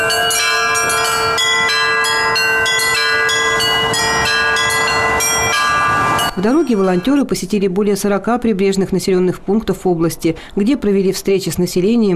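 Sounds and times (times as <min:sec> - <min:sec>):
portable belfry bells on a boat ringing melodically: 0:00.0 - 0:07.3
speech: 0:06.4 - 0:12.1.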